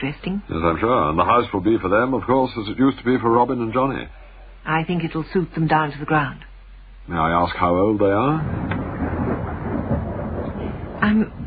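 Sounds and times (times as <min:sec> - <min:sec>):
speech: 0:00.0 - 0:06.5, 0:07.1 - 0:08.7
low rolling rumble of thunder: 0:07.5 - 0:11.4.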